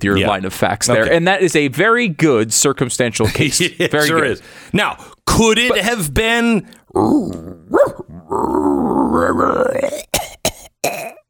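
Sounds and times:
speech: 0.0s - 10.2s, 10.8s - 11.2s
person imitating raccoon dog grunts, growls and groan: 7.0s - 11.2s
person coughing: 9.9s - 11.2s.

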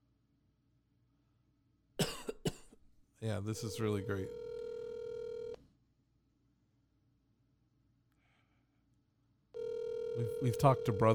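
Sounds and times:
speech: 3.2s - 4.4s, 10.2s - 11.1s
steady electronic telephone ringback tone: 3.7s - 5.6s, 9.6s - 11.1s.

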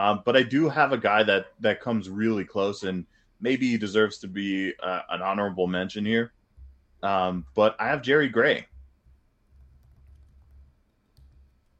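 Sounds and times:
speech: 0.0s - 6.4s, 7.0s - 8.7s
faint computer keyboard key clicks: 9.5s - 11.7s.

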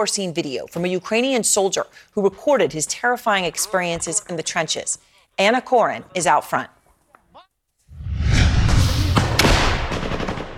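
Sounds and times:
speech: 0.0s - 6.8s
heavy booming battlefield blasts and rumbling low thuds: 8.0s - 10.5s
sharp cracking outgoing gunshots on a battlefield: 9.2s - 10.5s.

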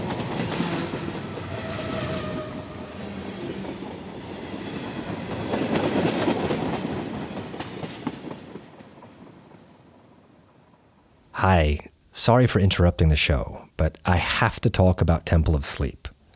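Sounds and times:
moving train rumbling: 0.0s - 9.2s
faint metallic squeals of train: 1.3s - 3.4s
speech: 11.4s - 16.1s.

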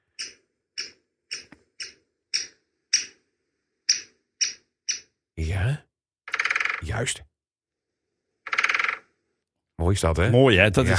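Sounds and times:
great spotted woodpecker sharp high kik calls played back: 0.0s - 3.2s, 3.9s - 5.2s, 6.3s - 6.9s, 8.5s - 9.1s
speech: 5.4s - 5.9s, 6.8s - 7.3s, 9.8s - 10.9s.

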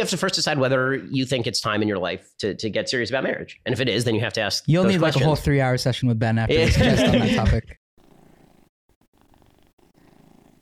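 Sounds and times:
speech: 0.0s - 7.8s
laughter: 6.5s - 7.8s
cat purring in someone's lap: 8.0s - 10.5s.

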